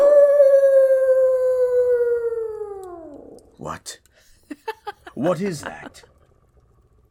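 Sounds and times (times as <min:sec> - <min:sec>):
wolf howling at night: 0:00.0 - 0:03.5
speech: 0:05.2 - 0:06.1.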